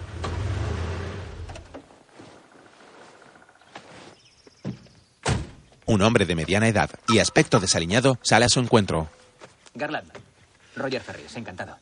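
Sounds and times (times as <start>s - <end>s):
off-road vehicle engine rumble: 0.0s - 3.0s
quiet shuffling: 1.7s - 4.6s, 6.0s - 11.5s
speech: 5.9s - 9.2s, 9.8s - 10.2s, 10.8s - 11.8s.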